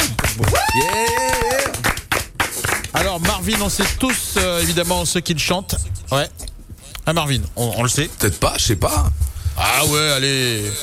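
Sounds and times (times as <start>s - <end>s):
few people clapping in a radio studio during a morning show: 0.0s - 4.8s
speech: 3.0s - 6.4s, 7.1s - 10.8s.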